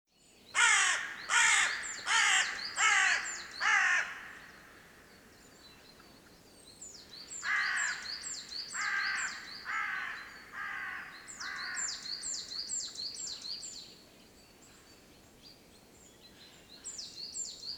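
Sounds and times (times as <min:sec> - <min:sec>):
Carrion crow giving harsh hoarse caws: 0:00.6 - 0:04.5, 0:07.4 - 0:08.0, 0:08.8 - 0:11.9.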